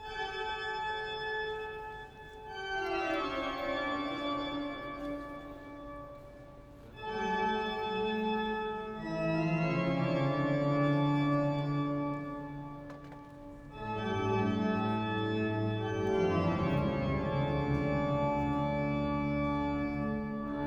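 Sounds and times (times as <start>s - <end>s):
organ: 0.1s - 20.6s.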